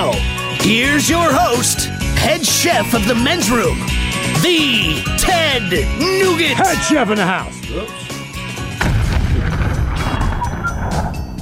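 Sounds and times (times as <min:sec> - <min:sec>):
speech: 0:00.1 - 0:08.0
loud explosion with heavy rumbling roar: 0:08.8 - 0:11.1
crackling debris: 0:08.8 - 0:11.3.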